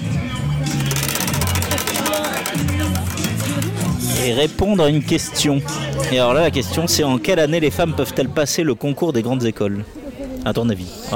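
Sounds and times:
bicycle wheel quiz game spinning and clicking: 0.7 - 4.3
speech: 4.2 - 11.1.

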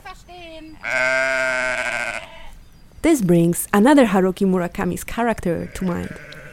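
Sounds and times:
flock of sheep and goats bleating on a field: 0.7 - 2.6, 5.5 - 6.5
speech: 3.1 - 6.4.

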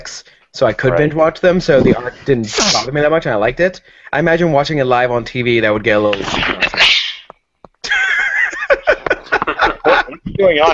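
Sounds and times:
speech: 0.0 - 6.6, 10.4 - 10.7
loud sharp sneeze: 2.5 - 2.9
laughter: 7.8 - 10.7.

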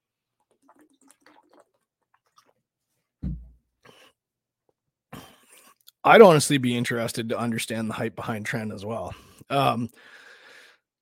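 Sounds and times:
sips and swallows of water: 0.2 - 2.7
soft thud of a glass: 3.2 - 3.6
speech: 6.1 - 10.2.

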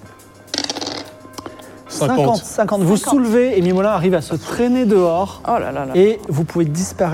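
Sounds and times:
dice rattling and clattering across a hard surface: 0.5 - 1.2
speech: 2.0 - 7.1.

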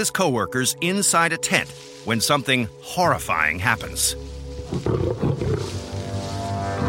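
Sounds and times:
speech: 0.0 - 5.8
man-eating lion roaring and snarling: 4.6 - 6.8.

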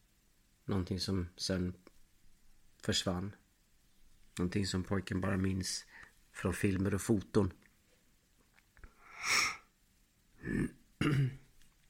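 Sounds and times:
speech: 0.7 - 1.9, 2.8 - 3.4, 4.4 - 7.6, 10.4 - 11.4
young boy coughing: 10.5 - 11.5.

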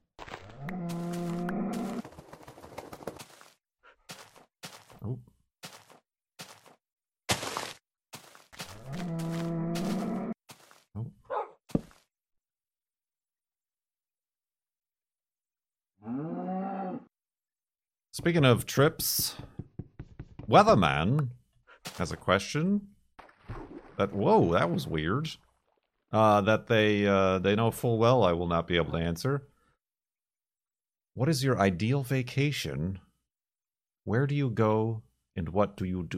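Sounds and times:
cow mooing: 0.6 - 2.0, 8.8 - 10.3, 16.0 - 17.1
speech: 18.2 - 19.6, 20.5 - 22.9, 24.0 - 25.4, 26.1 - 29.5, 31.2 - 33.0, 34.0 - 36.1
sharp knocks and taps: 19.3 - 20.6.

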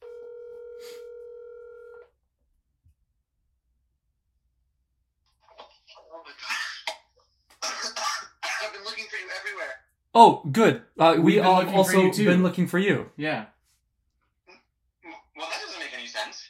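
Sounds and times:
telephone ring tone: 0.0 - 2.0
speech: 9.4 - 13.6.

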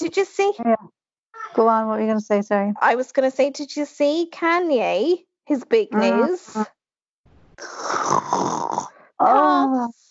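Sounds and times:
speech: 0.1 - 6.8, 7.6 - 10.0
person mock snoring down the phone: 7.6 - 9.1.

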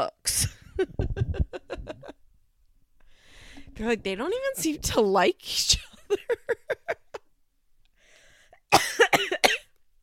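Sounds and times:
speech: 3.8 - 6.8
person with allergies coughing: 8.7 - 9.7.

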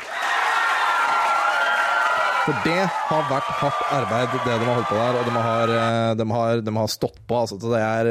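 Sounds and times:
crowd of people applauding: 0.0 - 6.0
speech: 2.4 - 8.0.

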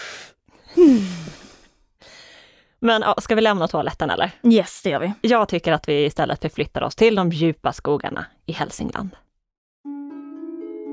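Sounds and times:
deep breath: 0.0 - 2.8
speech: 0.8 - 1.4, 2.8 - 9.2.

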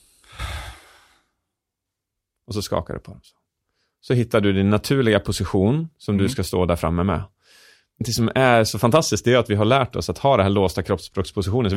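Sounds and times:
person exhaling deeply during a breathing exercise: 0.0 - 1.4
speech: 2.5 - 3.4, 4.0 - 11.7.

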